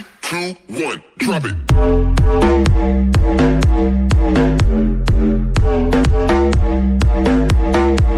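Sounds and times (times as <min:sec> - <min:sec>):
bass drop: 0:01.7 - 0:08.1.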